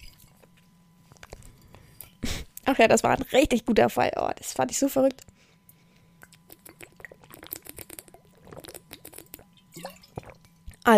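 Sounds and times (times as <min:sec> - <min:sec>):
speech: 0:02.7 - 0:05.3
person sipping a drink: 0:06.2 - 0:10.8
small swallowing sounds: 0:06.2 - 0:10.8.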